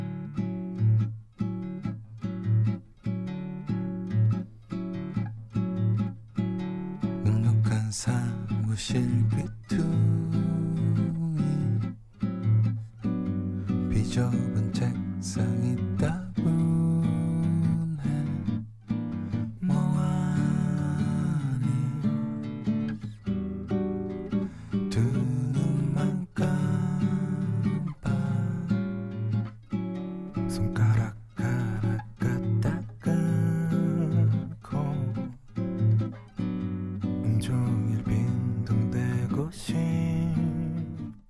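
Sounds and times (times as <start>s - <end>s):
song with sung vocal over guitar and backing instruments on the radio: 0.0s - 41.2s
speech: 7.9s - 10.4s, 14.2s - 16.2s.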